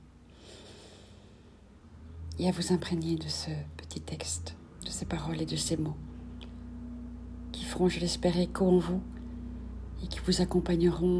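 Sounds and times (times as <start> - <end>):
slow exhale after a deep breath: 0.3 - 1.7
speech: 2.4 - 6.1, 7.8 - 9.2, 10.0 - 11.1.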